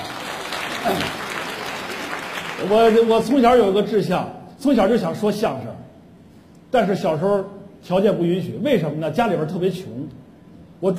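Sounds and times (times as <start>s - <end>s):
live audience applause at a television comedy stage show: 0.0s - 3.2s
speech: 0.8s - 1.3s, 2.6s - 5.8s, 6.7s - 10.2s, 10.8s - 10.9s.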